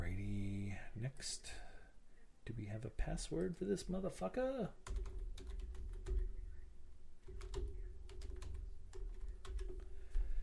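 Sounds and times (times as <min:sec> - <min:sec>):
speech: 0:01.0 - 0:01.7, 0:02.4 - 0:05.5
typing on a heavily used computer keyboard: 0:04.8 - 0:06.4, 0:07.2 - 0:10.2.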